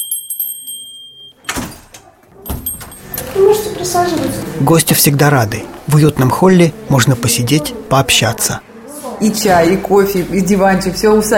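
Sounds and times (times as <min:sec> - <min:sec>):
small bell ringing at a school: 0:00.0 - 0:01.5, 0:02.5 - 0:03.4
speech: 0:03.4 - 0:11.3.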